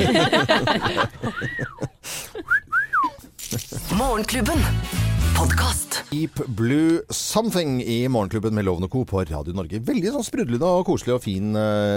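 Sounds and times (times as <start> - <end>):
burst of laughter-like voices: 0.0 - 3.9
person whistling short rising-and-falling tones: 2.4 - 3.2
speech: 4.2 - 11.9.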